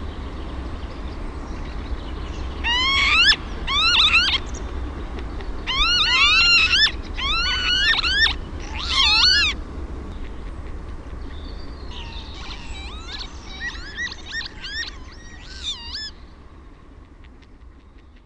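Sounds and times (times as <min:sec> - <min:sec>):
low background rumble: 0:00.0 - 0:18.2
Northern lapwing giving pee-wit cries: 0:02.6 - 0:04.6, 0:05.4 - 0:09.6, 0:11.8 - 0:16.2.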